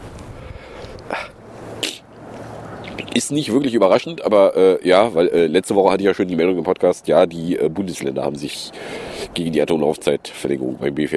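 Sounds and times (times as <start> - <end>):
person sneezing: 1.1 - 2.0
speech: 3.3 - 11.1.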